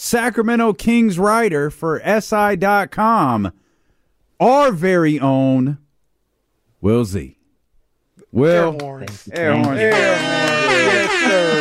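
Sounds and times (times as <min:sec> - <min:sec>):
speech: 0:00.1 - 0:03.6, 0:04.4 - 0:05.8, 0:06.8 - 0:07.4, 0:08.3 - 0:11.5
laughter: 0:09.0 - 0:11.5
loud brassy air horn blaring: 0:09.7 - 0:11.5.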